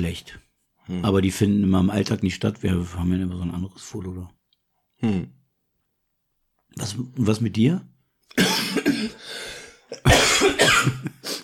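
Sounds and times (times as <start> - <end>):
speech: 0.0 - 4.4, 5.0 - 5.4, 6.7 - 11.0
person coughing: 8.3 - 11.4.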